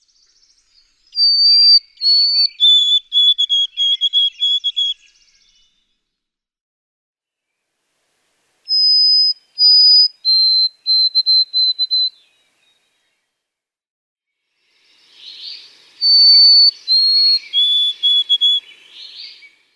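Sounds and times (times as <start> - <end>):
White-throated Sparrow singing: 0.5 - 5.8, 8.7 - 12.7, 15.0 - 19.6.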